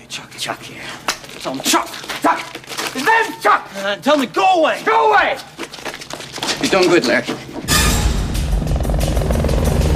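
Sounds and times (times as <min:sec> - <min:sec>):
speech: 0:00.1 - 0:05.6, 0:06.6 - 0:07.7
police helicopter flying overhead: 0:08.3 - 0:09.9.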